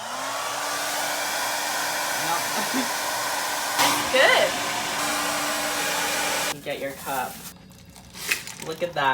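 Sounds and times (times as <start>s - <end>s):
hair dryer running on high: 0.0s - 6.6s
speech: 6.7s - 7.6s, 8.6s - 9.1s.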